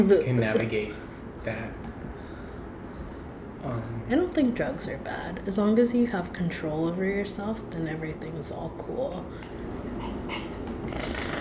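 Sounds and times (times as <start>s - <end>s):
speech: 0.0s - 1.9s, 3.6s - 9.6s
person imitating a cat's purr: 10.8s - 11.4s.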